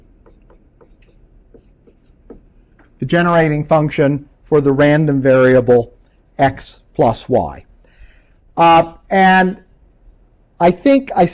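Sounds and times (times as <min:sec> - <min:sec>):
scratchy writing strokes of notes during a math lecture: 0:00.0 - 0:03.0
speech: 0:03.0 - 0:07.7, 0:08.6 - 0:09.6, 0:10.6 - 0:11.3.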